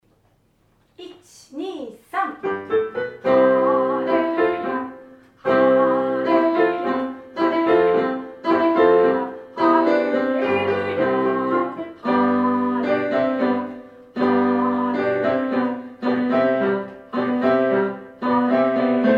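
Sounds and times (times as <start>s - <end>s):
alto voice singing: 3.2s - 19.1s.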